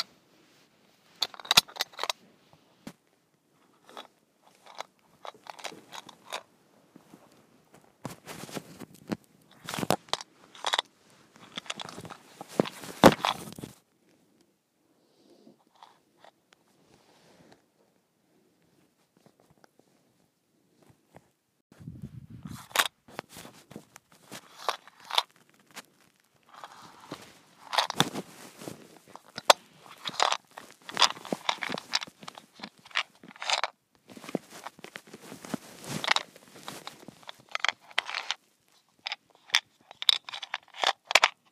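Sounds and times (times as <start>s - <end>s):
small container of mints shaken and rattling: 1.2s - 2.2s, 3.8s - 6.5s, 9.5s - 13.8s, 23.8s - 41.5s.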